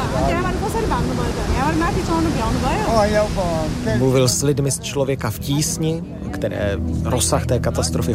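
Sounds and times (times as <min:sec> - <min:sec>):
flooded river rushing in the mountains: 0:00.0 - 0:05.8
speech: 0:00.2 - 0:08.1.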